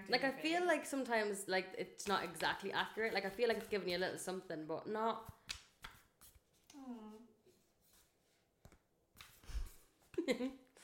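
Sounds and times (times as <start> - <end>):
speech: 0.1 - 5.4, 10.3 - 10.6
deck of cards being shuffled with riffling and flicking: 2.0 - 4.2, 5.2 - 6.7, 9.2 - 9.7
person speaking or humming: 6.7 - 7.4.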